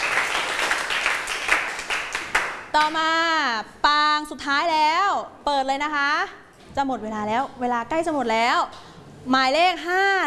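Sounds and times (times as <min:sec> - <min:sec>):
students in a classroom applauding themselves: 0:00.0 - 0:02.6
speech: 0:02.8 - 0:10.2.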